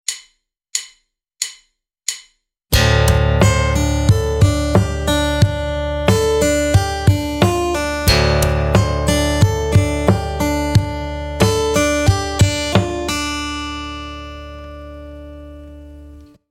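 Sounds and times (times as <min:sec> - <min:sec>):
percussive acoustic guitar: 0:02.7 - 0:15.1.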